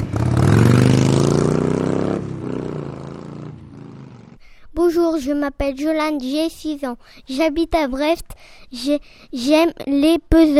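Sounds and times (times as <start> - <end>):
motorcycle engine revving: 0.0 - 4.4
speech: 4.9 - 10.5.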